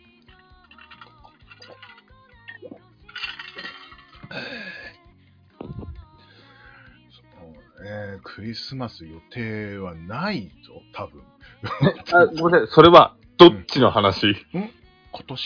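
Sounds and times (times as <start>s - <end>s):
glasses clinking in a toast: 0.6s - 4.7s
people chatting: 7.4s - 15.4s
speech: 8.4s - 15.4s
people laughing: 11.6s - 12.2s.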